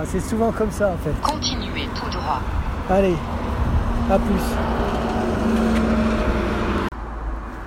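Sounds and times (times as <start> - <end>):
speech: 0.0 - 3.5, 4.1 - 6.0
street traffic rumbling at a bus stop: 0.0 - 7.6.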